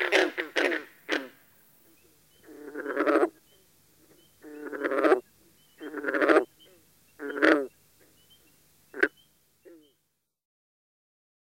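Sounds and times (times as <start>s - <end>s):
green frog croaking: 0.0s - 10.0s.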